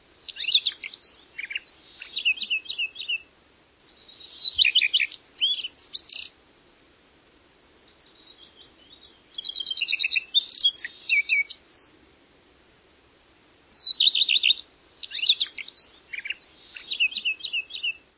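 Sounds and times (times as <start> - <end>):
bird singing: 0.0 - 6.3, 7.6 - 11.9, 13.7 - 18.1.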